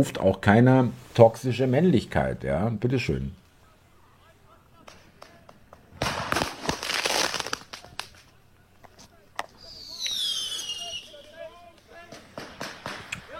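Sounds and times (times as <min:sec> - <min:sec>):
speech: 0:00.0 - 0:03.4
firecrackers fired into a group of people popping: 0:04.8 - 0:08.4, 0:09.4 - 0:13.3
shrill whistling streak of a firecracker: 0:09.6 - 0:11.5.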